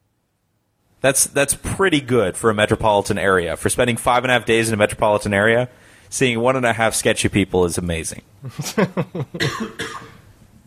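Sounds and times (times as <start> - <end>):
speech: 1.0 - 10.2
laughter: 8.4 - 9.4
person with harsh hacking coughs: 9.3 - 10.3.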